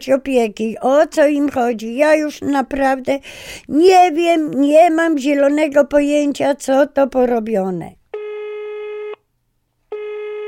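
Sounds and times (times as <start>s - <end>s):
speech: 0.0s - 8.0s
telephone ringback tone while a call is placed to a municipal family-assistance office: 8.2s - 9.2s, 9.9s - 10.4s.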